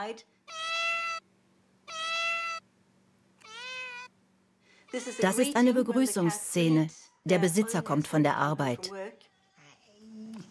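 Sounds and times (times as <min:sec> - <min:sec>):
speech: 0:00.0 - 0:00.6, 0:04.9 - 0:09.3
cat meowing at door to go out: 0:00.5 - 0:01.2, 0:01.9 - 0:02.6, 0:03.4 - 0:04.1.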